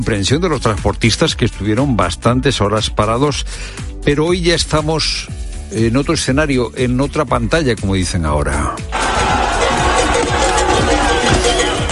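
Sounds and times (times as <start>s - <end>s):
speech: 0.0s - 9.0s
crowd of protesting farmers roaring and shouting outdoors in Oviedo: 8.9s - 11.9s.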